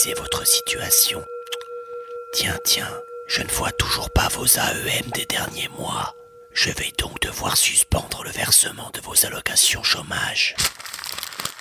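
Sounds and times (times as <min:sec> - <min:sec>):
speech: 0:00.0 - 0:01.4, 0:02.3 - 0:11.3
paper CV being crumpled in the hands: 0:10.5 - 0:11.5.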